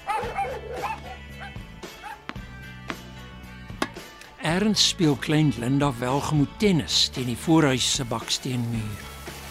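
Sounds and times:
two dogs barking excitedly at the postman: 0.0 - 2.4
speech: 4.4 - 9.1.

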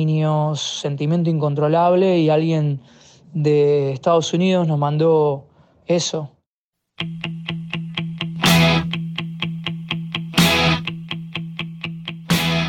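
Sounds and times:
speech: 0.0 - 6.4, 7.0 - 7.3
instrumental new wave rock music: 7.0 - 12.6.

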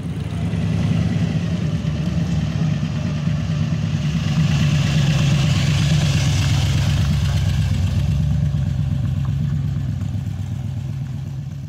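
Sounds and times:
muscle car engine rumbling: 0.0 - 11.6.

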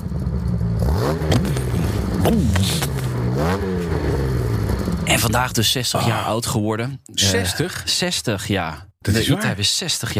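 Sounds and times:
3.8-litre inline-six car engine with three SU carburettors revving: 0.0 - 5.8
speech: 2.3 - 4.2, 5.2 - 10.1.

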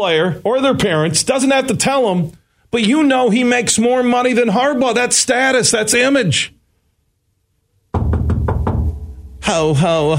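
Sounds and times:
speech: 0.0 - 6.6, 9.5 - 10.1
dense continuous low noise: 0.0 - 10.1
loud knocks on a door: 7.9 - 9.4.

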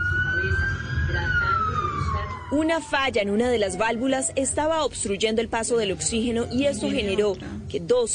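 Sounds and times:
siren wailing: 0.0 - 4.6
speech: 2.5 - 8.1.

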